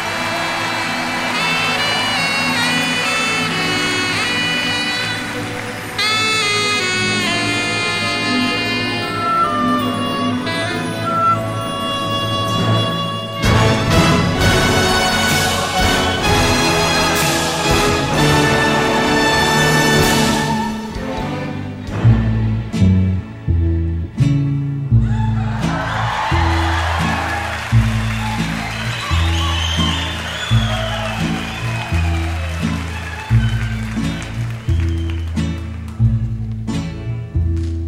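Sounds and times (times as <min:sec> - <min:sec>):
Mexican ranchera song intro instrumental: 0:00.2 - 0:24.8, 0:25.4 - 0:37.8.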